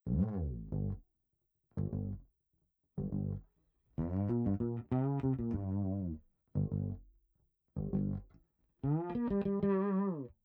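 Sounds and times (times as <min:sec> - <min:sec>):
bass music track chorus: 0:00.0 - 0:01.0, 0:01.8 - 0:02.3, 0:03.0 - 0:07.1, 0:07.8 - 0:10.3.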